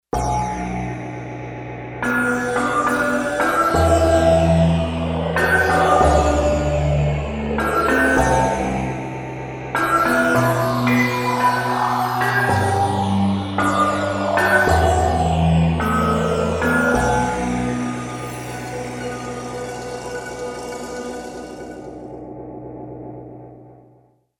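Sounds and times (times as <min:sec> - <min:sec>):
industrial music on digital synthesizer: 0:00.2 - 0:24.0.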